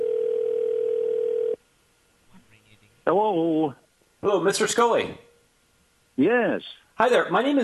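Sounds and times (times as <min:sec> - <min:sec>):
telephone ring tone: 0:00.0 - 0:01.6
speech: 0:03.1 - 0:05.3, 0:06.2 - 0:07.6.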